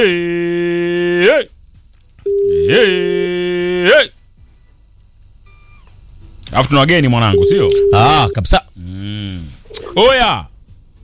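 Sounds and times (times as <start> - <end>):
speech: 0.0 - 0.6, 1.2 - 1.6, 6.5 - 10.5
clean steady beep: 2.3 - 3.3, 7.3 - 8.4
buzzy mobile phone call tone after a USSD code is dialed: 2.3 - 3.4, 7.3 - 8.4.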